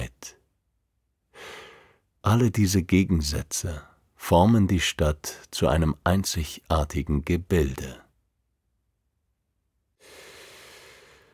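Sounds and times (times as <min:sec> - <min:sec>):
deep breath in: 0:01.3 - 0:02.1, 0:10.0 - 0:11.3
speech: 0:02.3 - 0:08.0.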